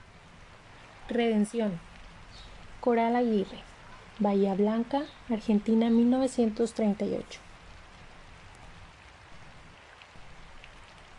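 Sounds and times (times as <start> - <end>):
steady rain pattering on a surface: 0.0 - 11.1
brighter drips: 0.6 - 11.1
speech: 1.1 - 7.4.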